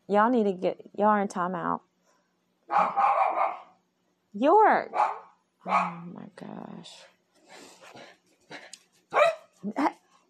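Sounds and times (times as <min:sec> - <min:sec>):
speech: 0:00.1 - 0:01.9, 0:02.7 - 0:03.1, 0:04.4 - 0:10.0
dogs barking loudly: 0:02.7 - 0:03.8, 0:04.9 - 0:06.1, 0:09.1 - 0:09.6.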